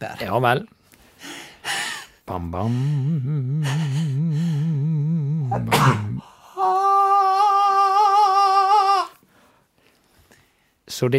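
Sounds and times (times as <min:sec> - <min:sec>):
speech: 0:00.0 - 0:00.8, 0:02.3 - 0:06.8, 0:11.0 - 0:11.1
long wavering vocal tone: 0:02.3 - 0:09.2
person sneezing: 0:05.5 - 0:06.3.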